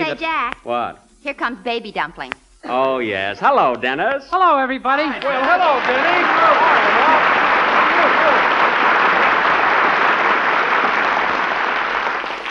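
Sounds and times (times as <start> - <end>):
speech: 0.1 - 7.2
large studio audience applause: 5.2 - 12.4.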